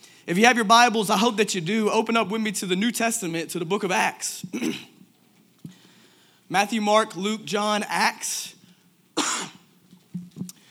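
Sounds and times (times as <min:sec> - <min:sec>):
speech: 0:00.2 - 0:04.9, 0:06.5 - 0:08.6
harsh cough: 0:04.5 - 0:05.0, 0:09.2 - 0:09.7
soft throat-clearing rasps: 0:09.2 - 0:09.7.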